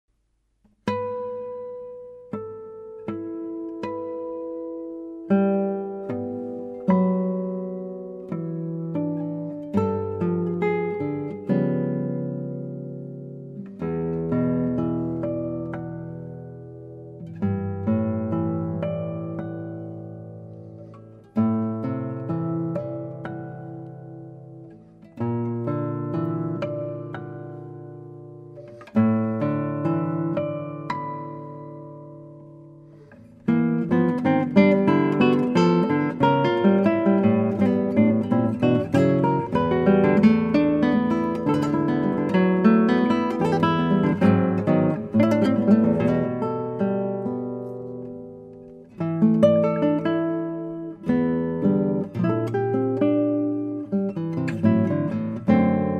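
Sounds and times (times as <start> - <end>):
panoramic guitar: 0.1 - 55.9.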